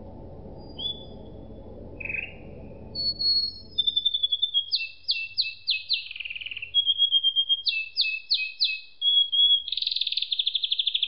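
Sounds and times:
low background rumble: 0.0 - 4.6
canary singing: 0.6 - 11.0.

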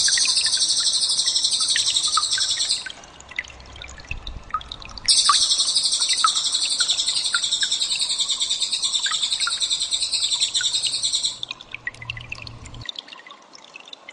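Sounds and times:
cililin bird trilling: 0.0 - 2.9, 5.1 - 11.5
faint bird chirps: 0.0 - 3.0, 5.1 - 12.8.

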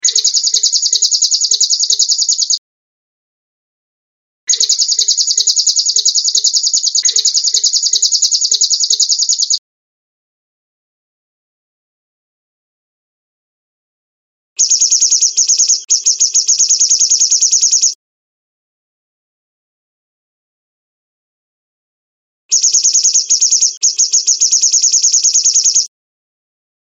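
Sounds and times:
serin calling: 0.0 - 2.6, 4.5 - 9.6, 14.6 - 18.0, 22.6 - 25.9.

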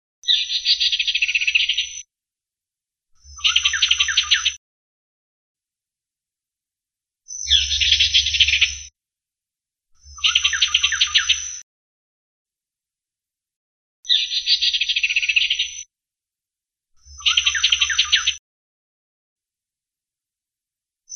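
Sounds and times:
ciungair coreng bird chirping in Kalimantan: 0.2 - 2.0, 3.2 - 4.6, 7.3 - 8.9, 10.0 - 11.6, 14.1 - 15.8, 17.0 - 18.4.

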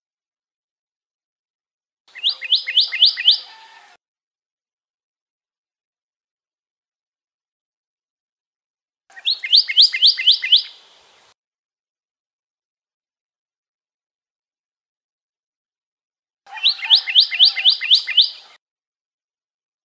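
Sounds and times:
Pyrrhuloxia song: 2.1 - 3.9, 9.1 - 10.8, 16.5 - 18.6.

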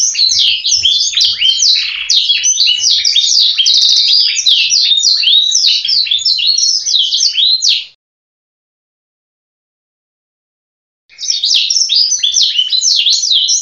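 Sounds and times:
canary singing warbled notes and twittering trills: 0.0 - 8.0, 11.1 - 13.6.

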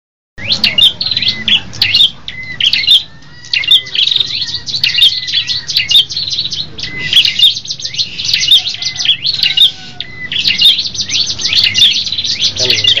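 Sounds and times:
group of red-headed tailorbirds singing together with chirps and trills: 0.4 - 12.9.

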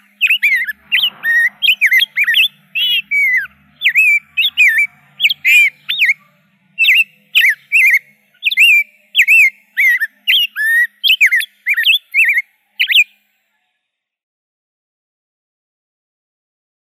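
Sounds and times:
Rose-breasted grosbeak warbled song: 0.0 - 13.2.

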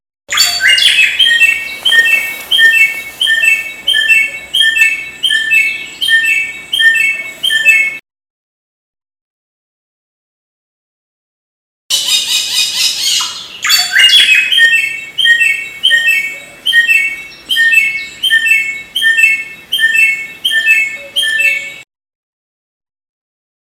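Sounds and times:
samyong bird singing: 0.3 - 8.0, 11.9 - 21.8.

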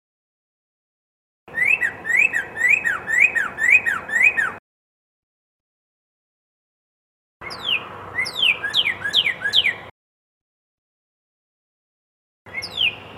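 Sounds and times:
red-crested cardinal singing slurred whistles: 1.5 - 4.6, 7.4 - 9.9, 12.5 - 13.1.

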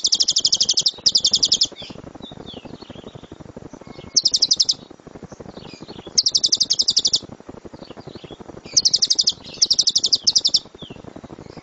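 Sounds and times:
dora type lovebird singing shrill rapid chirps: 0.0 - 4.9, 5.6 - 7.2, 7.8 - 11.6.

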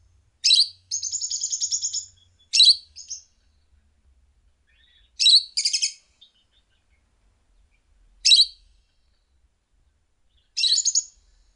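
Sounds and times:
lovebird calls with shrill chirps and buzzy chatter: 0.4 - 3.3, 4.7 - 7.0, 8.2 - 8.7, 10.3 - 11.2.

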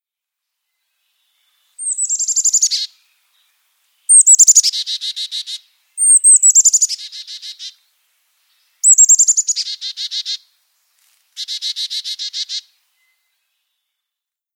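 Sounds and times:
Carolina chickadee chick-a-dee calls: 1.8 - 3.0, 4.1 - 7.8, 8.8 - 10.5, 11.4 - 12.8.

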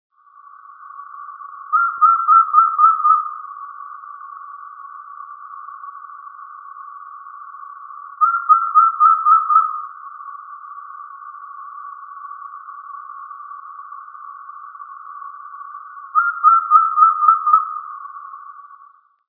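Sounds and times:
Glaucidium mooreorum: 1.6 - 4.0, 8.1 - 12.3, 16.0 - 19.1.

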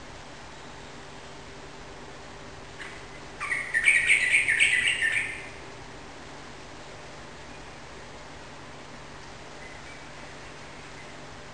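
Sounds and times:
yellow-vented bulbul singing bubbling warbled notes indoors: 2.8 - 5.6, 9.5 - 11.3.

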